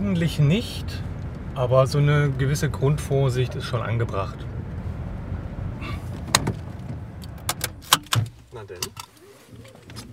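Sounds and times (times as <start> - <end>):
speech: 0.1 - 4.5, 8.6 - 9.1
dull car door thud in a hikers' parking lot: 6.1 - 8.4
sharp clicks and rattles of someone getting out of a parked car: 6.2 - 10.1.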